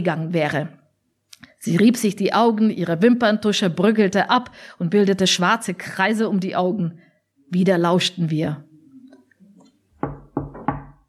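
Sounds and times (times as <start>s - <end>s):
speech: 0.0s - 0.8s, 1.6s - 8.7s
faint murmurs: 8.6s - 9.8s
knocking: 10.0s - 11.0s.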